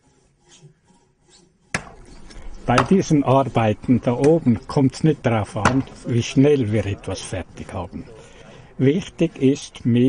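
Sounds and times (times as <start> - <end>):
hand saw rasping through wood: 0.0 - 3.5
speech: 2.7 - 10.0.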